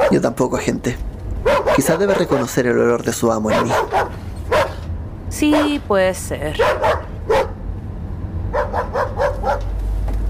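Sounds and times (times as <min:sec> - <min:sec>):
dogs barking at a woman: 0:00.0 - 0:00.4, 0:01.4 - 0:05.9, 0:06.6 - 0:07.6, 0:08.5 - 0:09.8
low rumble: 0:00.0 - 0:10.2
speech: 0:00.1 - 0:04.2, 0:05.3 - 0:07.0.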